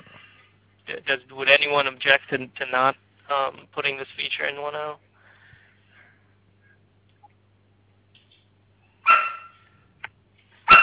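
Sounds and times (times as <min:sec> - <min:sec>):
speech: 0:00.9 - 0:05.1
dog yipping: 0:09.0 - 0:09.6
dog barking: 0:09.0 - 0:09.7.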